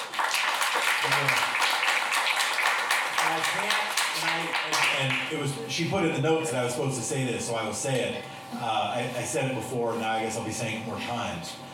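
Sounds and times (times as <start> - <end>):
crowd applauding: 0.0 - 5.3
speech: 3.5 - 11.7.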